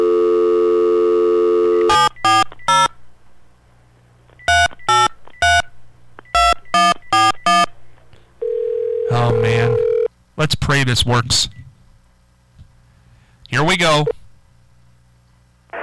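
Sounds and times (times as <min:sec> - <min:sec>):
telephone dial tone: 0:00.0 - 0:02.1, 0:08.4 - 0:10.1
telephone keypad beeps: 0:01.9 - 0:02.9, 0:04.4 - 0:07.7
speech: 0:10.7 - 0:11.6, 0:13.6 - 0:14.1.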